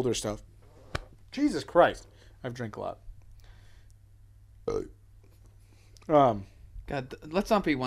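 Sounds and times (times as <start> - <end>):
speech: 0.0 - 0.5, 1.3 - 3.0, 4.7 - 5.0, 6.1 - 7.8
burp: 4.7 - 5.0.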